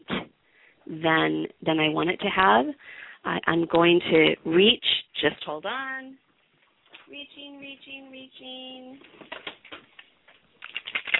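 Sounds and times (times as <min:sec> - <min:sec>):
speech: 0:00.9 - 0:06.3, 0:07.1 - 0:09.6
cards rattling inside a worry box: 0:09.1 - 0:11.1.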